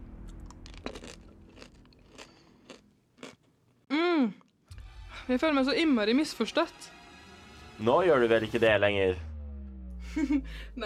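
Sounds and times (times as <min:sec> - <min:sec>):
chocolate candy balls crunching as bitten and chewed: 0:00.4 - 0:03.5
person humming: 0:03.9 - 0:04.4
speech: 0:05.3 - 0:07.0, 0:07.8 - 0:09.3, 0:10.1 - 0:10.8.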